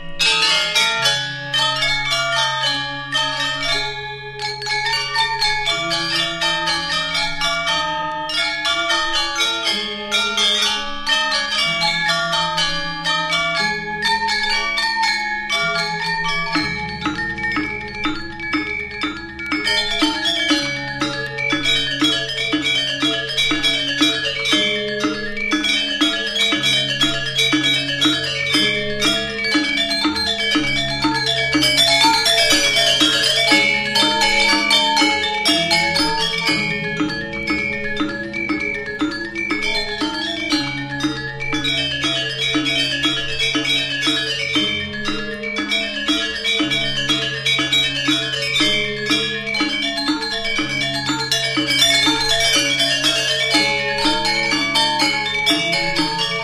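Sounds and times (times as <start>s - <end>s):
gamelan gong kebyar music: 0.0s - 56.4s.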